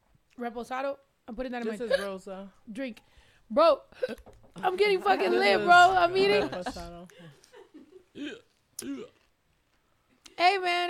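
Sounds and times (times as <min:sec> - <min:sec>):
speech: 0:00.4 - 0:09.2, 0:10.4 - 0:10.8
sharp voiced hiccups: 0:08.1 - 0:09.3.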